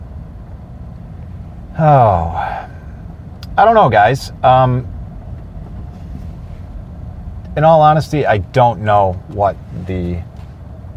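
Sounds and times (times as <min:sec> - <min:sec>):
New Holland tractor engine idling: 0:00.0 - 0:10.9
speech: 0:01.8 - 0:02.6, 0:03.6 - 0:04.9, 0:07.6 - 0:10.3.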